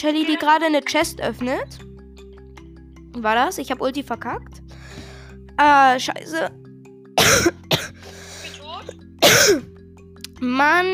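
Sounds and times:
speech: 0:00.0 - 0:01.9, 0:03.2 - 0:05.0, 0:05.6 - 0:06.6, 0:09.4 - 0:09.7, 0:10.4 - 0:10.9
person coughing: 0:07.2 - 0:08.0, 0:09.2 - 0:09.7
throat clearing: 0:07.2 - 0:08.0, 0:09.2 - 0:09.7.

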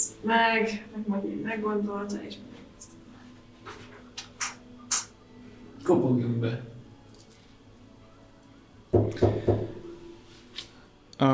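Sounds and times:
speech: 0:00.2 - 0:02.6, 0:05.8 - 0:06.8, 0:08.9 - 0:09.8
solid knocks on a door with a resonant wooden thud: 0:08.9 - 0:09.9.

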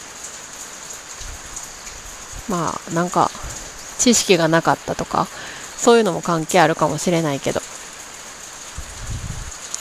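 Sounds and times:
rain falling outdoors heard through an open window: 0:00.0 - 0:09.7
speech: 0:02.5 - 0:03.4, 0:04.0 - 0:07.6.

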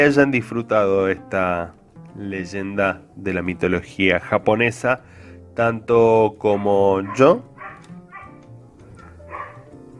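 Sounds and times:
speech: 0:00.0 - 0:07.5
dog barking: 0:06.5 - 0:09.7.

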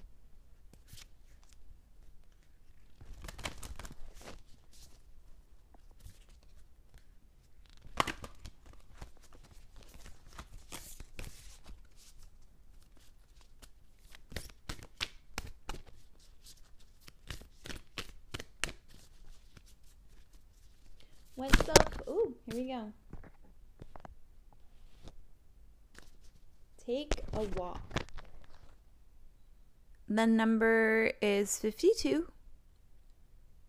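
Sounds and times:
deck of self-care cards being shuffled: 0:00.7 - 0:05.1, 0:05.7 - 0:24.1, 0:25.9 - 0:28.8
faint crisp papery snaps and flicks of cards: 0:00.7 - 0:05.1, 0:05.7 - 0:22.7, 0:25.9 - 0:26.4, 0:27.1 - 0:28.8
speech: 0:22.2 - 0:23.0, 0:26.9 - 0:28.0, 0:30.1 - 0:32.3.

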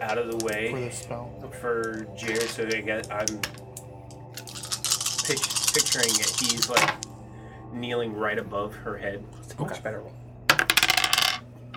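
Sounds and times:
speech: 0:00.0 - 0:03.6, 0:05.3 - 0:07.1, 0:07.7 - 0:10.2
small hard dice rolling on a table: 0:01.9 - 0:03.6, 0:04.4 - 0:07.1, 0:10.5 - 0:11.4.

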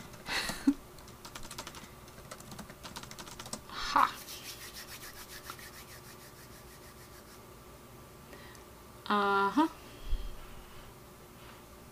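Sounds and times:
typing on a computer keyboard: 0:00.0 - 0:03.6
speech: 0:09.1 - 0:09.7.

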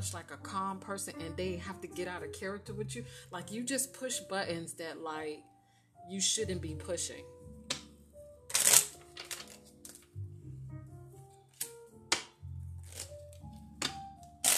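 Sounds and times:
speech: 0:00.0 - 0:07.4
playing cards being shuffled with crisp riffling bursts: 0:08.5 - 0:10.2, 0:11.5 - 0:14.5.

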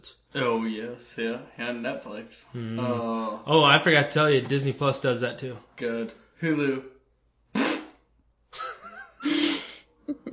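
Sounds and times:
speech: 0:00.0 - 0:06.9
sputtering buzzy fart noise: 0:07.5 - 0:08.0.

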